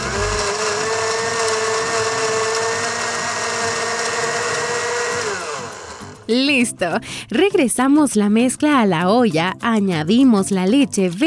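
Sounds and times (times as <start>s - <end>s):
blender whirring at high speed pureeing soup into a cream: 0.0s - 6.4s
speech: 6.3s - 11.2s.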